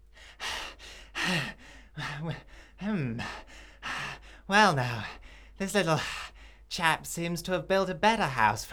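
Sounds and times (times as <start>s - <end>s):
voice imitating a wolf panting and wheezing after blowing hard: 0.2s - 6.3s
speech: 1.3s - 3.5s, 4.5s - 8.7s.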